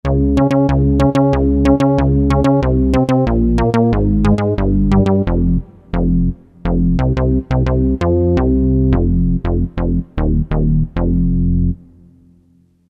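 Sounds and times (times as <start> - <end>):
fat synth bass from E-mu Proteus FX factory preset: 0.0 - 12.0.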